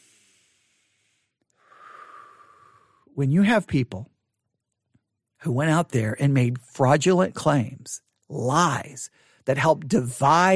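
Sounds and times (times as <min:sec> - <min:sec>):
person taking a deep breath: 0:00.0 - 0:03.2
speech: 0:03.2 - 0:04.1, 0:05.4 - 0:10.5.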